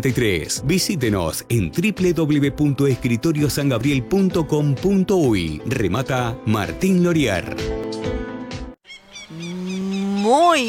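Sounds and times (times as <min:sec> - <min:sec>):
speech: 0:00.0 - 0:08.2, 0:10.3 - 0:10.6
cow mooing: 0:09.3 - 0:10.6.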